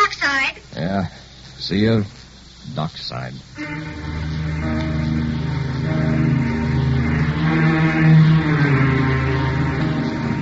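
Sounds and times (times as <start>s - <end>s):
speech: 0.8s - 4.8s, 7.5s - 8.7s
motor launch engine droning: 3.6s - 10.4s.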